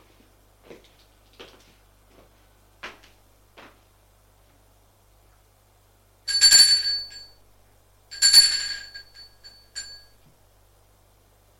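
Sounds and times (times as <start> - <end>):
doorbell ringing: 6.3 - 7.4, 8.1 - 10.2.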